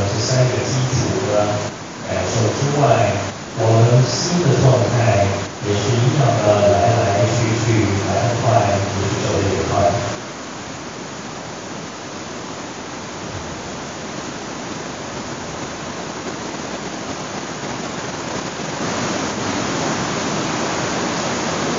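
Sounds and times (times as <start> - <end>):
steady dense rain falling: 0.0 - 21.7.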